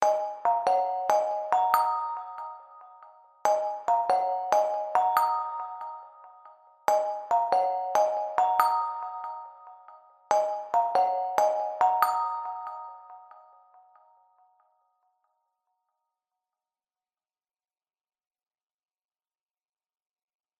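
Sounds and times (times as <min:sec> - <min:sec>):
mobile phone ringtone: 0:00.0 - 0:14.1.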